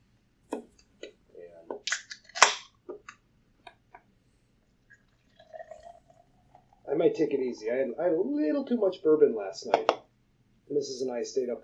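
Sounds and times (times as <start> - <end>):
beer can cracking open with fizzing hiss: 1.7 - 3.2
beer being poured: 4.8 - 7.6
speech: 7.0 - 10.0, 10.7 - 11.6.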